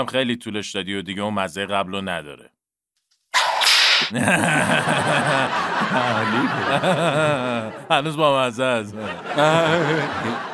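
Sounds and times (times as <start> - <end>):
speech: 0.0 - 2.6, 4.0 - 10.5
whip crack sound effect: 3.4 - 4.1
people laughing: 4.1 - 10.5.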